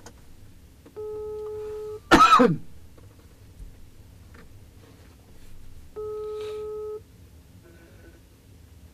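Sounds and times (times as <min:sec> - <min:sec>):
quiet hiss: 0:00.0 - 0:08.9
electronic ringback tones of an outgoing phone call: 0:01.0 - 0:02.1, 0:06.0 - 0:07.0
person coughing or clearing throat: 0:02.1 - 0:02.7.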